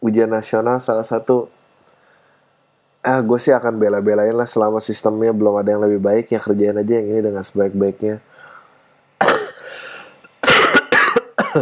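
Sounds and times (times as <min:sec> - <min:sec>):
speech: 0:00.0 - 0:01.6, 0:03.0 - 0:08.3
person coughing: 0:09.2 - 0:11.6.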